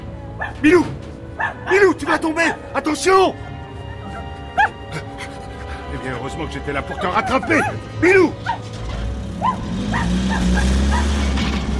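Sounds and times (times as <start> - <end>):
dog barking: 0.4 - 0.6, 1.4 - 1.8, 3.4 - 5.0, 6.9 - 7.8, 8.4 - 8.7, 9.4 - 11.3
speech: 0.5 - 3.5, 6.0 - 8.8, 9.4 - 11.4
laughter: 4.0 - 7.8.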